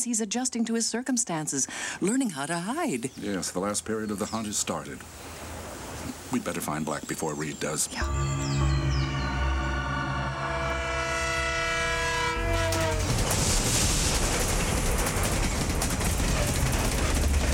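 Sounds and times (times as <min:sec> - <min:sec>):
speech: 0:00.0 - 0:05.5, 0:06.3 - 0:08.8
elevated train horn blaring: 0:08.0 - 0:13.7
elevated train roaring past: 0:08.0 - 0:17.5
metallic rattle of train cars passing overhead: 0:11.0 - 0:17.5.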